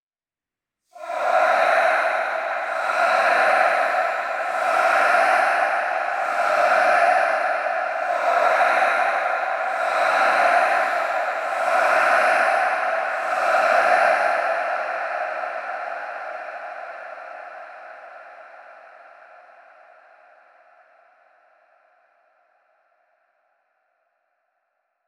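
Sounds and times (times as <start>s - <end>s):
crowd chanting: 1.0s - 20.3s.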